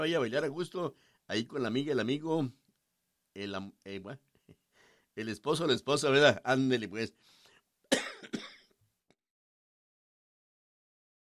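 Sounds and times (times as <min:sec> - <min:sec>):
speech: 0:00.0 - 0:02.6, 0:03.4 - 0:04.3, 0:05.2 - 0:07.4
person coughing: 0:07.9 - 0:08.8
throat clearing: 0:07.9 - 0:08.8.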